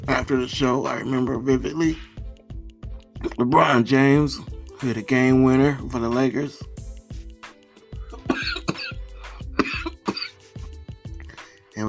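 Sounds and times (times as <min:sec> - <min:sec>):
speech: 0:00.1 - 0:02.1, 0:03.3 - 0:06.7
person coughing from smoking weed: 0:08.1 - 0:10.4.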